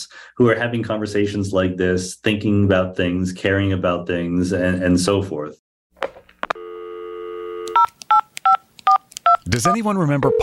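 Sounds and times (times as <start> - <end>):
speech: 0.0 - 5.6, 9.5 - 10.4
landline telephone dial tone: 6.4 - 9.4, 10.2 - 10.4.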